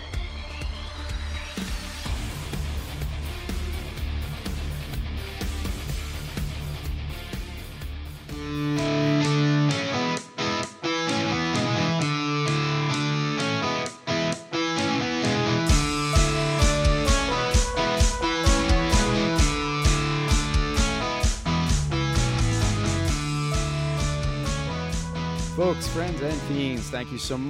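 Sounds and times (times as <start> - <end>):
drums with a steady pounding beat: 0.0 - 8.1, 15.7 - 26.4
loud distorted electric guitar in a blues rock song: 1.6 - 27.4
speech: 25.6 - 27.4.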